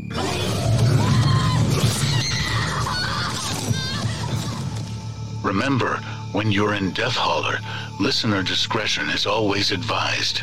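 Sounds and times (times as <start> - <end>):
overlapping shrill screams: 0.0 - 5.0
crashing and shattering noise: 0.1 - 5.0
speech: 5.5 - 10.4.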